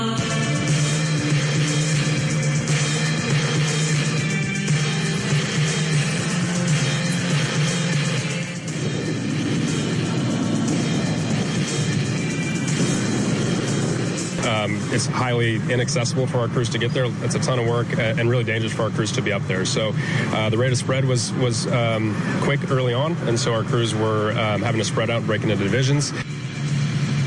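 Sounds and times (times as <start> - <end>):
helicopter flying during firefighting water drop: 0.2 - 27.2
speech: 15.0 - 26.2.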